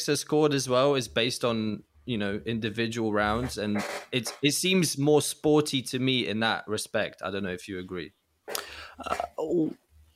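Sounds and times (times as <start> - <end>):
speech: 0.0 - 9.8
chair creaking under shifting weight: 3.3 - 4.5.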